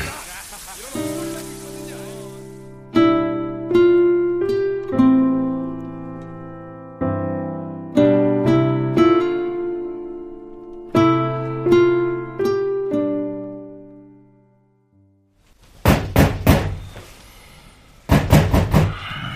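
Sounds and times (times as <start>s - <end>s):
laughter: 0.0s - 2.3s
soft musical notes: 1.0s - 14.8s
knocking on a door: 15.8s - 16.8s, 18.1s - 19.0s.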